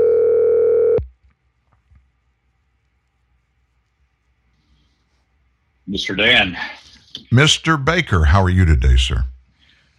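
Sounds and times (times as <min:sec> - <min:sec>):
buzzing telephone tone: 0:00.0 - 0:01.0
speech: 0:05.9 - 0:09.3.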